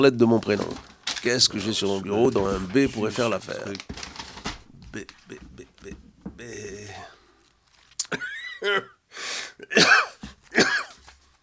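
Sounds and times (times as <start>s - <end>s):
speech: 0.0s - 4.1s, 4.9s - 5.4s, 8.6s - 8.9s
breathy vocal noises: 4.6s - 7.6s
harsh coughing: 4.9s - 7.2s, 8.0s - 11.0s.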